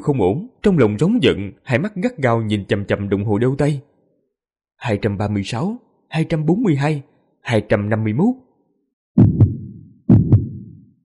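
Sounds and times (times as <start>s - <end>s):
speech: 0.0s - 3.9s, 4.8s - 8.5s
deep pounding heartbeat racing at an extreme rate: 9.2s - 11.0s.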